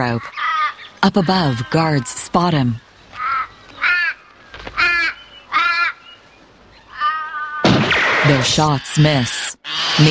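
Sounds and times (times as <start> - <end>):
speech: 0.0 - 0.4, 1.0 - 2.8, 8.3 - 10.0
harsh cawing bird calls as birds fly overhead: 0.0 - 2.3, 2.9 - 7.8.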